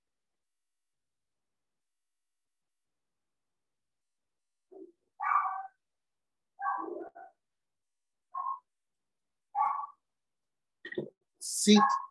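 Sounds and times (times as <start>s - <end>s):
pet dog yipping: 5.2s - 5.8s, 6.6s - 7.4s, 8.3s - 8.7s, 9.5s - 10.0s
speech: 11.0s - 12.0s.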